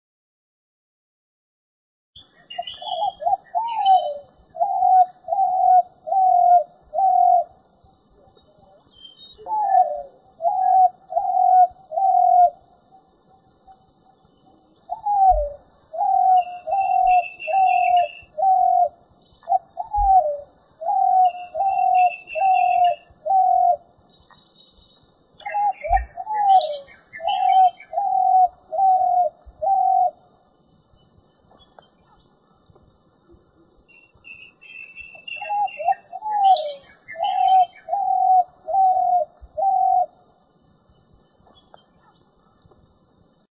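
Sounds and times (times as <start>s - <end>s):
spotted dove cooing: 2.5s - 23.9s, 25.4s - 30.3s, 33.3s - 40.4s.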